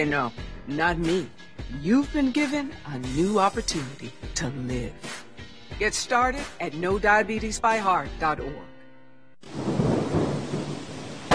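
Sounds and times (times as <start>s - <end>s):
speech: 0.0s - 5.2s, 5.8s - 8.7s
steady rain: 9.4s - 11.3s
thunder rolling through a rainstorm: 9.5s - 11.3s.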